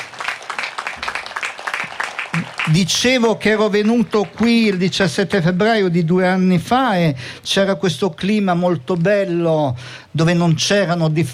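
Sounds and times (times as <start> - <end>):
audience applauding to thank volunteers at a gathering: 0.0 - 5.1
speech: 2.4 - 11.3.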